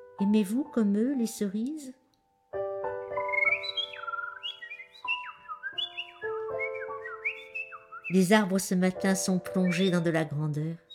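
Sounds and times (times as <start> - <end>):
speech: 0.2 - 2.0, 8.1 - 10.8
birds singing in whistling phrases: 3.2 - 10.9.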